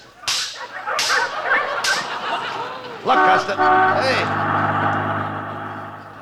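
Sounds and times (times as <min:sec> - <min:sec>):
sled dogs yipping and barking: 0:00.0 - 0:03.1
large bus engine droning: 0:00.0 - 0:06.2
laughter: 0:00.0 - 0:06.2
whip cracks driving sled dogs through snow in Alaska: 0:00.2 - 0:02.2
speech: 0:03.0 - 0:04.6.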